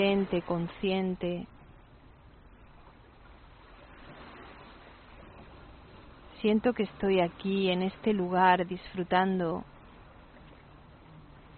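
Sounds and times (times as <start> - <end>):
speech: 0.0 - 1.6, 6.4 - 9.7
ocean surf: 0.0 - 11.5.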